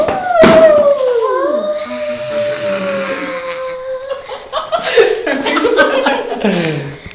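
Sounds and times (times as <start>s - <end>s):
scary noises: 0.1s - 4.2s
laughter: 2.1s - 7.1s.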